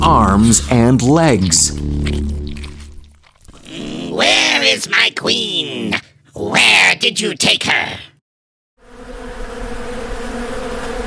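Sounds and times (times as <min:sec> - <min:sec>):
speech: 0:00.0 - 0:02.5, 0:04.6 - 0:08.1
dense swarm of angry bees buzzing: 0:08.8 - 0:11.0.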